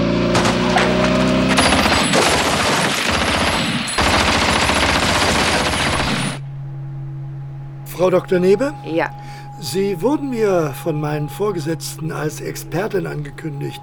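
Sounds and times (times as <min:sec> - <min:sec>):
sustained military gunfire as soldiers open fire on command: 0:00.3 - 0:06.4
speech: 0:08.0 - 0:13.8.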